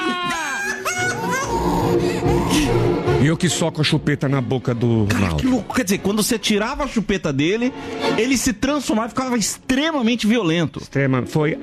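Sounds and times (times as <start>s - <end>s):
child crying in high-pitched wails: 0.0s - 2.9s
speech: 3.2s - 11.6s.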